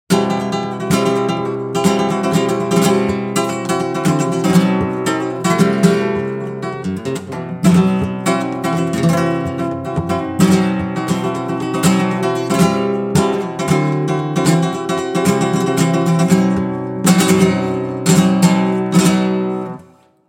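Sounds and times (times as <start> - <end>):
spruce and rosewood acoustic guitar: 0.1 - 20.2.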